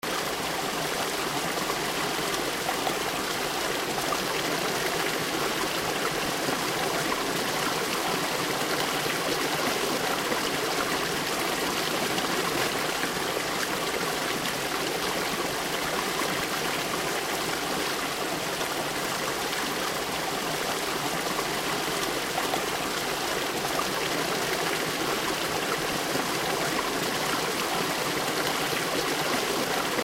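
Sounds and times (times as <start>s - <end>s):
flowing stream in Prescott Arizona: 0.0s - 30.0s.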